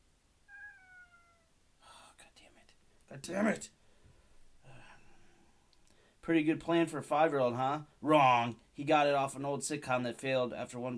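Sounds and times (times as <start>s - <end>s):
cat meowing: 0.5s - 1.6s
speech: 3.1s - 3.8s, 6.3s - 10.9s.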